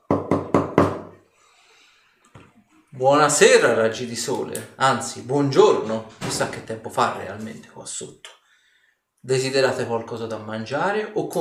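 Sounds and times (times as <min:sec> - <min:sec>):
loud knocks on a door by a guard carrying a tray of food: 0:00.1 - 0:01.1
speech: 0:03.0 - 0:08.4, 0:09.2 - 0:11.3.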